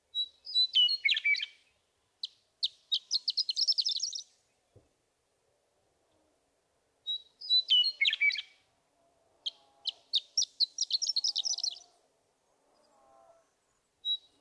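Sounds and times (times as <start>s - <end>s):
Western meadowlark song: 0.0s - 4.8s, 7.0s - 8.7s, 9.4s - 12.0s, 13.8s - 14.3s.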